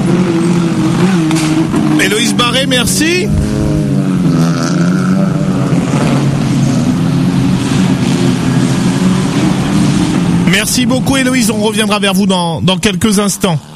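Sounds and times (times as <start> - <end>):
broadband road noise: 0.0 - 13.7
engines of passing cars rumbling: 0.0 - 13.7
speech: 2.4 - 4.0, 10.6 - 13.7.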